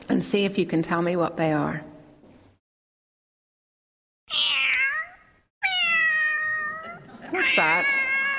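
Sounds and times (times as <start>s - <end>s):
speech: 0.1s - 1.9s
cat meowing: 4.3s - 8.3s.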